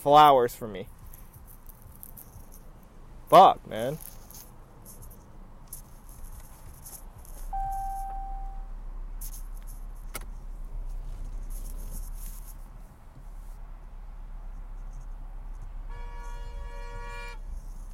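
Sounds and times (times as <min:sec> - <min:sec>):
speech: 0:00.0 - 0:01.0, 0:03.3 - 0:04.1
low road and engine rumble inside a moving car in traffic: 0:00.0 - 0:17.9
short electronic beep: 0:07.5 - 0:08.7.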